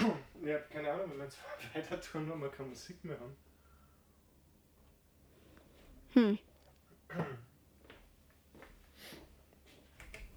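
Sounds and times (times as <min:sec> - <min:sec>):
throat clearing: 0:00.0 - 0:00.4, 0:07.1 - 0:07.5
speech: 0:00.2 - 0:03.5, 0:06.1 - 0:06.5, 0:07.1 - 0:07.5.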